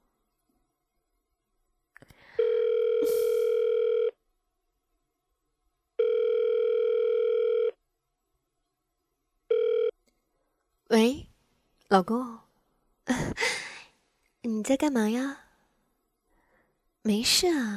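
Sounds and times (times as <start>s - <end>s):
phone ringback tone of an outgoing call: 2.4s - 4.2s, 6.0s - 7.8s, 9.5s - 9.9s
speech: 11.9s - 12.4s, 14.4s - 15.4s, 17.0s - 17.7s.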